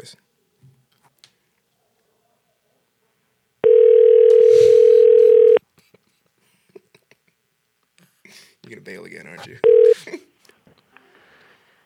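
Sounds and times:
speech: 0.0 - 0.2, 8.7 - 10.2
telephone dial tone while calling someone back: 3.6 - 5.6, 9.6 - 10.0.

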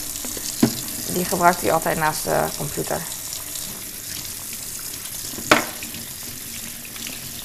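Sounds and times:
warm tap water splashing into a sink while rinsing a child's water bottle: 0.0 - 7.4
speech: 1.1 - 3.2
plastic clunk: 5.4 - 5.8.

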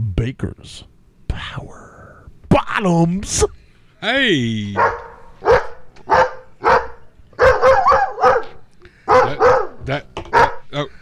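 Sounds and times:
speech: 0.3 - 0.9, 1.5 - 1.8, 2.8 - 5.0
dog barking: 4.8 - 10.7.

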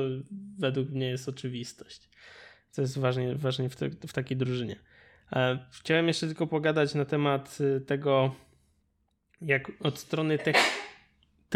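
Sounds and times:
speech: 0.0 - 8.5, 9.4 - 10.8
sneeze: 10.4 - 11.0.

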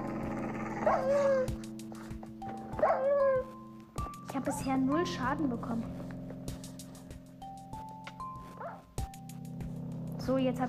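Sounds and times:
video game wolves barking: 0.0 - 1.6, 2.8 - 3.5
speech: 0.9 - 1.7, 2.8 - 3.6, 4.3 - 6.0, 10.3 - 10.6.

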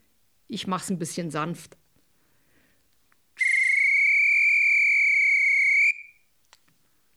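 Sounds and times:
speech: 0.5 - 1.8
wooden trill whistle blown softly: 3.4 - 6.2.

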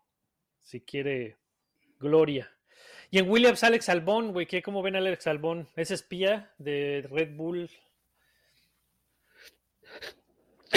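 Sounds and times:
speech: 0.7 - 1.4, 2.0 - 7.9
person sneezing: 9.9 - 10.7.

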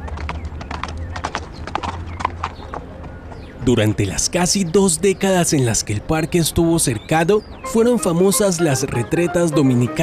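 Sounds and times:
horse hooves clip-clopping in a trot: 0.0 - 4.5
speech: 3.7 - 10.0.

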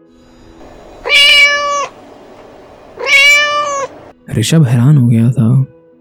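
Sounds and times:
cat meowing: 0.6 - 4.1
speech: 4.4 - 5.8.

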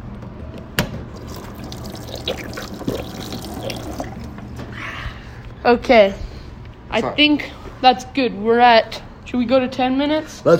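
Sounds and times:
voice imitating a waterfall: 1.3 - 4.3
speech: 2.3 - 2.8, 5.6 - 6.2, 6.9 - 10.5.

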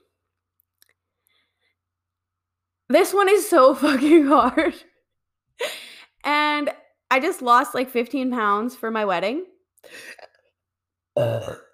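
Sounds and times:
speech: 2.9 - 4.9, 7.1 - 10.3, 11.2 - 11.6
breathy sound: 9.8 - 10.3
person burping loudly: 11.2 - 11.7.

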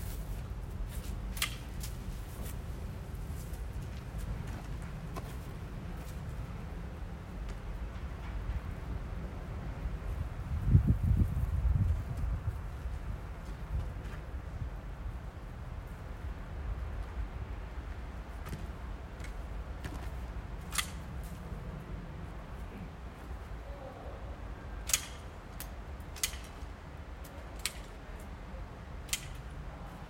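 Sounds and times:
low steady outdoor rumble: 0.0 - 30.0
pruning shears snipping a backyard tree: 1.3 - 2.0, 20.6 - 21.1, 24.8 - 28.0, 29.0 - 29.5.

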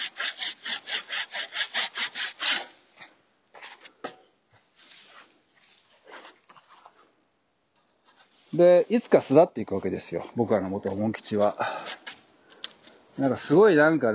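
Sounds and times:
saw cutting a large tree branch: 0.0 - 2.7
speech: 8.6 - 12.0, 13.2 - 14.1.

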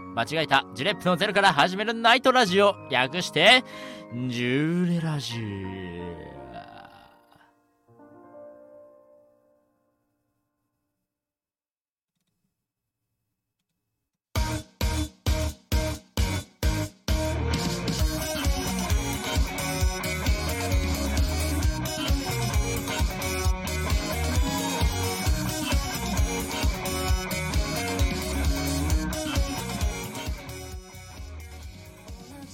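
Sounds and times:
speech: 0.2 - 6.4
full-band upbeat pop opening theme song with drums and bass: 14.4 - 32.5.

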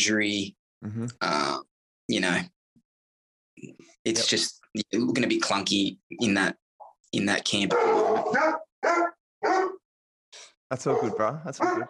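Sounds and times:
speech: 0.0 - 2.6, 3.6 - 9.8, 10.4 - 11.8
dog barking: 7.7 - 9.8, 10.8 - 11.8.

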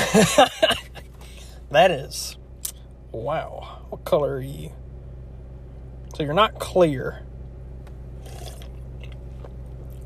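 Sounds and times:
laughter: 0.0 - 1.1
steady low hum: 0.0 - 10.0
speech: 0.1 - 0.9, 1.7 - 2.4, 3.1 - 4.8, 6.1 - 7.3
person slurping a canned energy drink: 8.2 - 8.8.

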